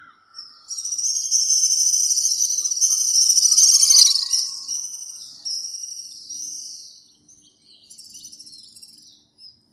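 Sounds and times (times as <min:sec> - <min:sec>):
House Swift calls in Ipoh Perak Malaysia: 0:00.7 - 0:05.0.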